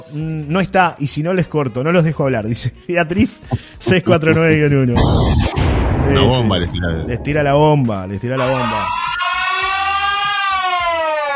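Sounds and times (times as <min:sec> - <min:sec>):
speech: 0:00.1 - 0:09.1
low rhythmic thumping: 0:03.2 - 0:08.4
laughter: 0:03.9 - 0:04.8
siren wailing: 0:08.4 - 0:11.3.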